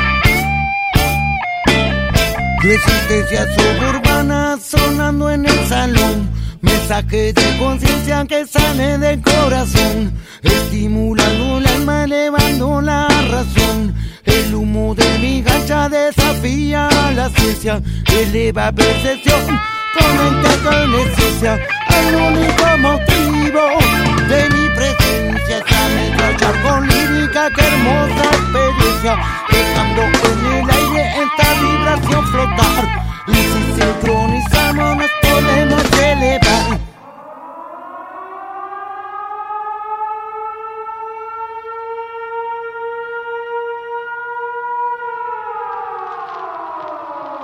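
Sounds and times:
loud band track with a heavy steady beat: 0.0s - 36.9s
speech: 2.6s - 36.8s
sustained rising siren-like wail: 19.5s - 47.4s.

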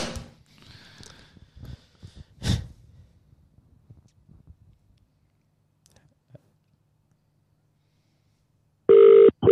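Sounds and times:
outgoing phone call ringing tone: 8.9s - 9.5s.

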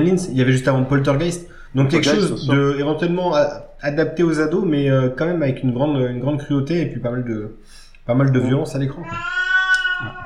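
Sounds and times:
speech: 0.0s - 9.4s
cat meowing: 9.0s - 10.2s.

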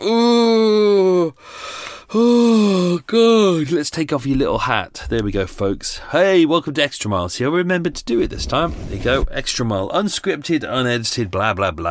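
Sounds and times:
long loud person yawning: 0.0s - 3.1s
speech: 2.1s - 2.4s, 3.0s - 11.8s.

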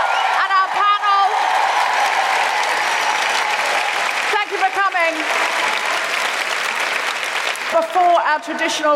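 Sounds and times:
excited whoops and shouts from the audience: 0.0s - 4.0s
large audience applauding in a concert hall: 0.0s - 8.5s
speech: 7.8s - 8.9s.

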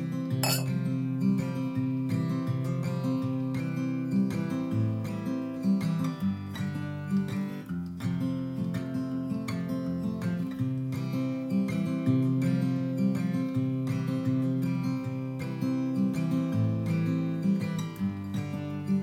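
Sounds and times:
guitar music: 0.0s - 19.0s
glasses clinking in a toast: 0.4s - 0.8s.

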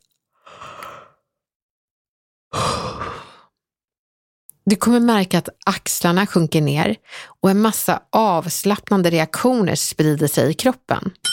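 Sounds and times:
breathy voiced yawns: 2.5s - 3.5s
speech: 4.7s - 11.3s.

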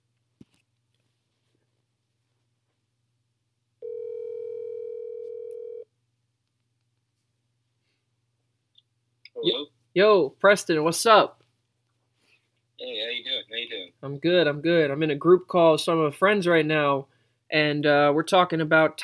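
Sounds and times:
phone line tone as a group call is dialed out: 3.8s - 5.8s
speech: 9.4s - 11.4s, 13.6s - 19.0s.

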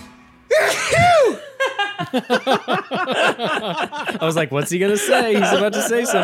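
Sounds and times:
person sneezing: 0.5s - 1.5s
rhythmic breathy laughter: 0.5s - 4.3s, 4.8s - 6.2s
speech: 2.1s - 6.2s.

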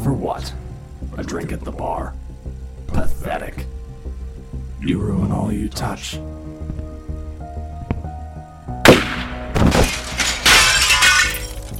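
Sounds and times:
speech: 0.1s - 2.2s, 2.9s - 3.7s, 4.8s - 6.5s
mirror shattering into shards: 8.9s - 11.7s.

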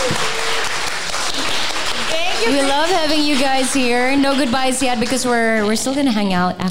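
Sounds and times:
room full of people applauding: 0.0s - 6.1s
speech: 2.4s - 6.6s.

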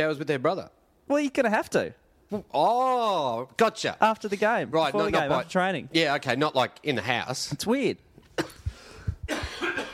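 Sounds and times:
speech: 0.0s - 8.5s
harsh coughing fit with hoarse wheezing: 8.4s - 8.7s, 9.3s - 9.9s.

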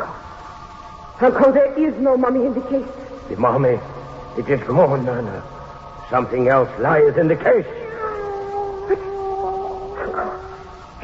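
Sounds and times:
speech: 1.2s - 7.8s, 8.9s - 9.1s
cat yowling: 7.4s - 10.8s.

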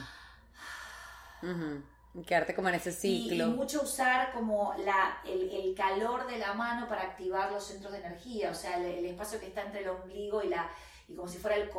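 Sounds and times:
deliberate deep breath inhale as breathing work: 0.0s - 1.6s
speech: 1.4s - 11.7s.

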